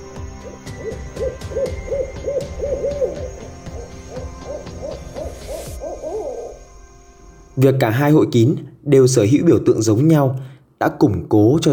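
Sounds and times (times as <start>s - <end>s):
owl hooting: 0.0s - 7.6s
faint sustained drone: 0.0s - 8.4s
speech: 7.6s - 11.7s.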